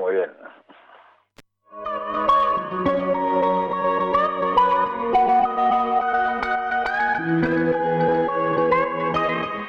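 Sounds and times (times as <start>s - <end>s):
song with shimmering chords drenched in echo and reverb: 1.7s - 9.6s.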